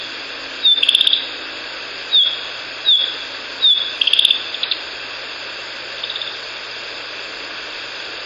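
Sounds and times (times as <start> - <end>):
Narcissus flycatcher giving falling call notes and buzzy rattle: 0.0 - 1.4, 2.1 - 4.9.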